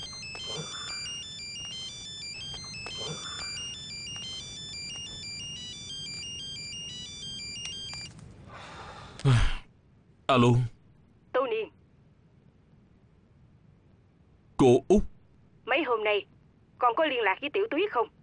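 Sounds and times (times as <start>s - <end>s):
mobile phone ringtone with bright electronic tones: 0.0s - 8.1s
speech: 9.2s - 9.6s, 10.3s - 10.7s, 14.6s - 15.1s, 16.0s - 18.2s.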